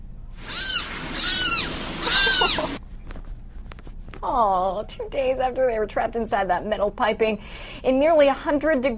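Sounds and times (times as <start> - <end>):
steady hiss: 0.0 - 4.0
kittens meowing, crying for help: 0.4 - 2.8
speech: 4.2 - 8.9.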